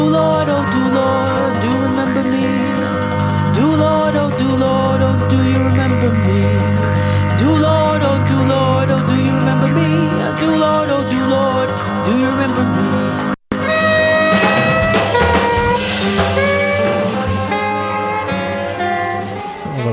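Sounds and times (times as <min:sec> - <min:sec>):
dense experimental jazz with layered sustained instrumental tones: 0:00.0 - 0:19.9.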